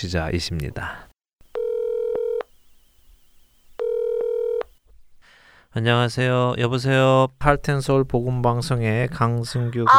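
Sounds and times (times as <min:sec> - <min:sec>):
speech: 0:00.0 - 0:01.1, 0:05.8 - 0:09.9
electronic telephone tones as a call connects: 0:01.5 - 0:04.8.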